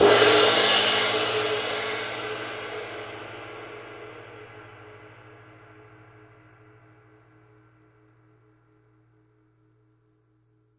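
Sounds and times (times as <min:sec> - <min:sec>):
big ride cymbal crash single hits: 0:00.0 - 0:05.0.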